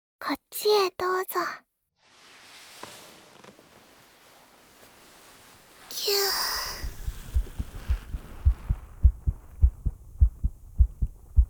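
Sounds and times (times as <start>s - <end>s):
speech: 0.3s - 1.6s, 6.0s - 6.6s
person's heartbeat: 6.8s - 11.4s.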